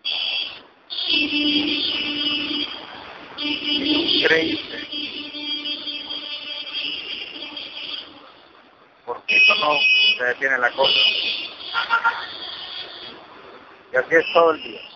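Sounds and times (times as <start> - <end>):
busy street traffic at an intersection: 0.0 - 14.9
car horns blaring at a busy intersection: 0.1 - 8.5, 9.2 - 13.4, 14.0 - 14.9
speech: 4.3 - 4.8, 9.6 - 11.2, 13.9 - 14.9.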